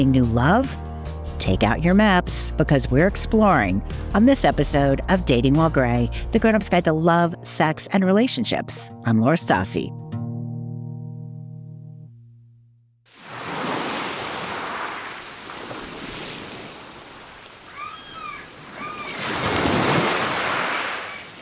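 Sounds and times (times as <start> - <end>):
speech: 0.0 - 10.0
ocean waves washing onto the shore: 13.1 - 21.3
seagull-like cries: 17.6 - 19.5, 20.9 - 21.3.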